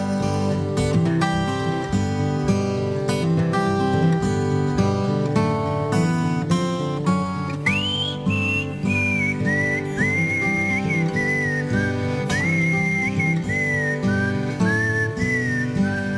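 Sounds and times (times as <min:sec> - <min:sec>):
steady instrumental backing: 0:00.0 - 0:16.1
clear bright whistled melody: 0:07.3 - 0:16.1.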